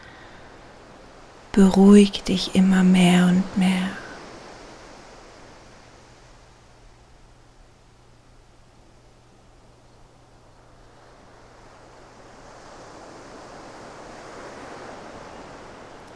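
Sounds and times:
speech: 1.6s - 4.0s
ocean waves washing onto a beach: 3.6s - 6.6s, 10.3s - 16.1s.

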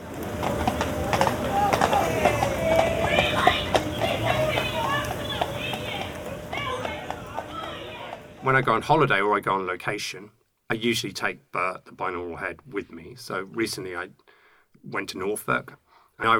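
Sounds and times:
crowd of young people murmuring and chattering: 0.0s - 8.7s
police horse hooves clip-clopping on hard ground: 0.0s - 8.9s
speech: 8.5s - 16.3s.

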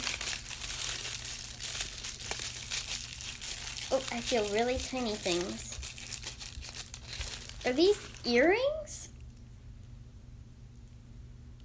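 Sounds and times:
tissue paper crinkling and rustling as a box is opened: 0.0s - 8.9s
speech: 3.9s - 5.7s, 7.6s - 8.9s.

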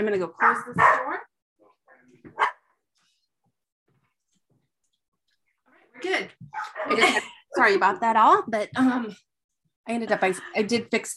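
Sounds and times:
speech: 0.0s - 1.3s, 6.0s - 11.1s
pet dogs barking at home: 0.4s - 1.3s, 2.4s - 2.7s, 6.5s - 7.0s.

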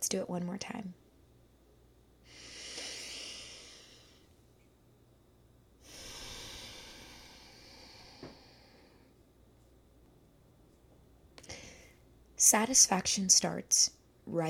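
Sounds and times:
speech: 0.0s - 1.0s, 12.5s - 14.4s
deep slow breathing: 2.3s - 4.4s, 5.8s - 9.3s.

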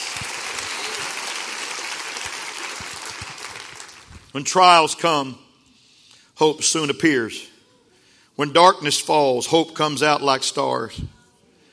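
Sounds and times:
audience applause: 0.0s - 4.3s
speech: 4.4s - 5.4s, 6.4s - 7.5s, 8.4s - 11.2s.

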